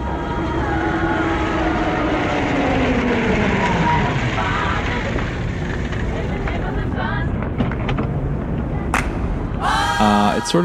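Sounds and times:
airport transportation engine drone: 0.0s - 10.6s
car traffic: 0.0s - 10.6s
sharp click or knock: 8.9s - 9.3s.

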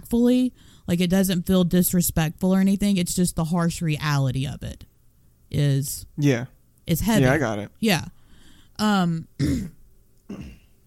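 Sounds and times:
speech: 0.1s - 4.9s, 5.5s - 8.2s, 8.8s - 10.6s
throat clearing: 9.4s - 10.8s.

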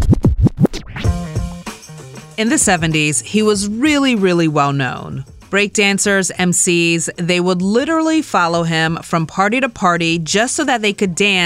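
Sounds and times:
DJ scratching a vinyl record: 0.0s - 1.2s
music with a steady beat: 1.0s - 5.6s
speech: 2.4s - 11.4s.

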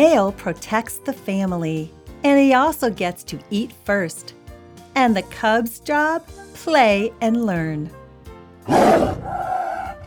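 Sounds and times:
speech: 0.0s - 4.4s, 5.0s - 8.0s, 8.7s - 9.4s
tiger roaring: 8.6s - 10.0s.

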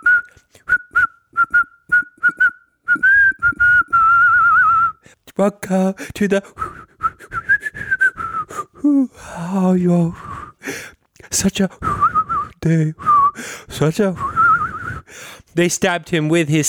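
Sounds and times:
person whistling a song melody: 0.0s - 5.0s, 6.6s - 9.0s, 10.1s - 10.6s, 11.8s - 15.1s
speech: 5.4s - 6.6s, 8.9s - 10.3s, 11.3s - 12.0s, 12.6s - 14.3s, 15.6s - 16.6s.

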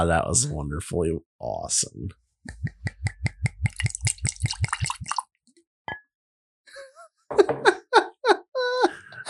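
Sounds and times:
speech: 0.0s - 3.0s
88-proof spirit glugging from a bottle into highball glasses: 2.7s - 5.2s
laughter: 6.8s - 9.2s.

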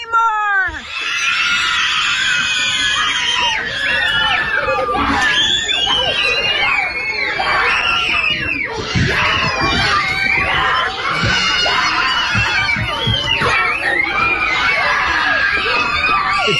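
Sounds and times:
large group of schoolchildren cheering and screaming in celebration: 0.0s - 16.5s.

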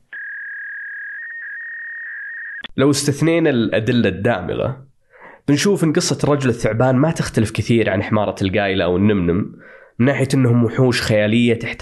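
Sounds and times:
fax machine connection whistle: 0.0s - 2.7s
speech: 2.8s - 4.9s, 5.5s - 11.8s.

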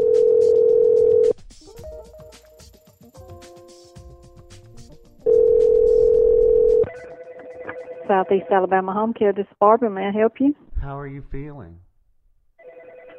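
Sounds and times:
phone keypad dialing beeps: 0.0s - 1.3s, 5.3s - 6.8s
telephone dial tone: 0.0s - 1.3s, 5.3s - 6.9s, 12.6s - 13.1s
speech: 8.1s - 11.8s.

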